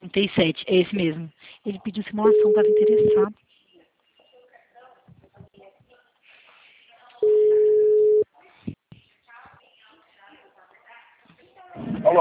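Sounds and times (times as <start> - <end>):
soft talk: 0.0 - 12.1
speech: 0.2 - 3.4
phone line busy tone after a dropped call: 2.2 - 3.3, 7.2 - 8.2.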